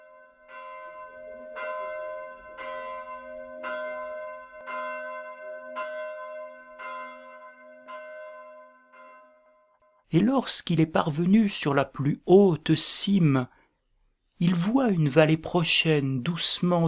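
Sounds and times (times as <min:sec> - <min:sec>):
church bell ringing: 0:00.0 - 0:11.8
speech: 0:10.1 - 0:13.6, 0:14.4 - 0:16.8.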